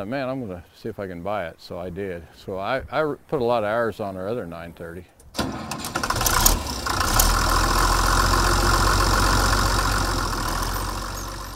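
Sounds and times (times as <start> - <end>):
speech: 0.0 - 5.6
tractor diesel engine cranking and idling: 5.3 - 11.5.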